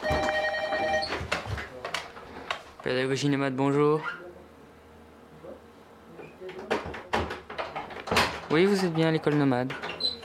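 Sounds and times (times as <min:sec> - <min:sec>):
telephone ringing with a bright buzzy tone: 0:00.0 - 0:01.2
speech: 0:02.8 - 0:04.2, 0:08.5 - 0:09.9.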